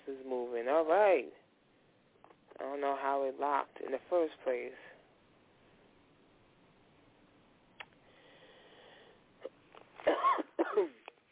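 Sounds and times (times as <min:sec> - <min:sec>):
faint hum: 0:00.0 - 0:11.3
speech: 0:00.1 - 0:01.4, 0:02.6 - 0:04.9
person coughing: 0:09.4 - 0:11.1.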